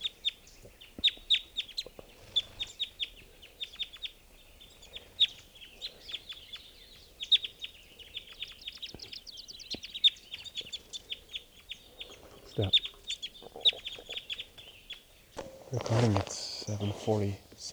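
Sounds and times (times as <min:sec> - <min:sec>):
birds caught in a net clucking and squawking: 0:00.0 - 0:17.7
rustling: 0:15.2 - 0:17.7
speech: 0:17.1 - 0:17.7.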